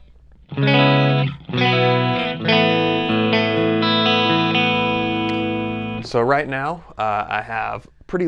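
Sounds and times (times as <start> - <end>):
clean electric guitar strummed chords through an amp head and isolation cabinet: 0.5 - 6.1
speech: 6.1 - 8.2.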